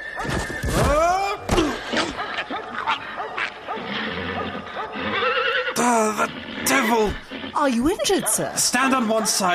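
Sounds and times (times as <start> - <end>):
horse whinnying: 0.2 - 8.6
horse snorting: 1.9 - 9.3
dog barking: 2.0 - 5.0, 8.0 - 9.5
speech: 6.0 - 9.5.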